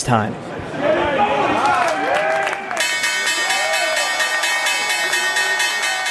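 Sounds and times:
speech: 0.0 - 0.5
crowd clapping and cheering: 1.0 - 6.0
stock exchange opening electric bell ringing: 2.8 - 6.0.

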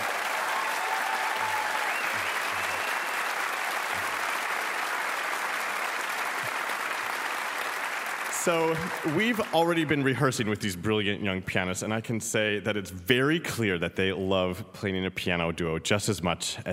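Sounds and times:
audience applause: 0.0 - 10.2
speech: 8.4 - 16.7.

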